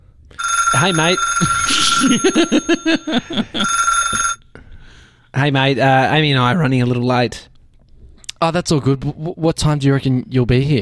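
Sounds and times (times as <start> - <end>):
mobile phone ringing with electronic ringtone: 0.4 - 4.4
speech: 0.8 - 4.3, 5.3 - 7.5, 8.4 - 10.7
laughter: 1.4 - 4.2.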